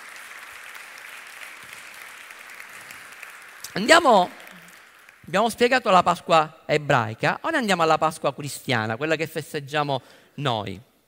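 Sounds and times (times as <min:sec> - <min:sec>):
crowd of many hands applauding: 0:00.0 - 0:05.5
speech: 0:03.8 - 0:04.4, 0:05.3 - 0:10.9.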